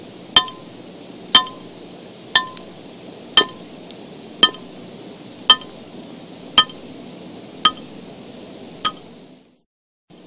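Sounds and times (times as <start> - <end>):
water drops landing with a crisp ringing tick: 0.4 - 0.7, 1.4 - 1.7, 2.4 - 2.7, 3.4 - 3.6, 4.4 - 4.7, 5.5 - 5.8, 6.6 - 6.8.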